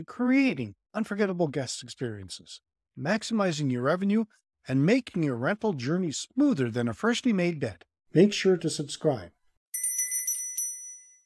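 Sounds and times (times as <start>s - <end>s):
speech: 0.0s - 9.4s
bright high-pitched bell ringing: 9.8s - 11.2s.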